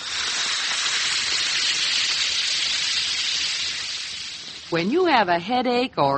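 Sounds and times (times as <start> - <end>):
Alka-Seltzer tablet fizzing in a glass of water: 0.0 - 4.8
speech: 4.7 - 6.1.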